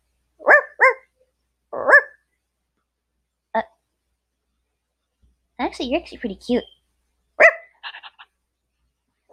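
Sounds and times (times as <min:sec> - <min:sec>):
dog barking: 0:00.4 - 0:01.1, 0:01.7 - 0:02.2, 0:07.4 - 0:07.8
speech: 0:05.7 - 0:06.7.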